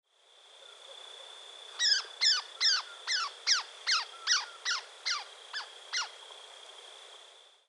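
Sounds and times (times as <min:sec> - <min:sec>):
Elf Owl alarm call: 0:01.7 - 0:06.2.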